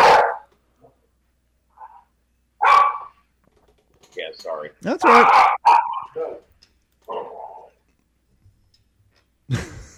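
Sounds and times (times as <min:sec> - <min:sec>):
dog on a counter barking: 0:00.0 - 0:00.5, 0:02.6 - 0:03.2, 0:05.0 - 0:06.5
speech: 0:04.2 - 0:06.5.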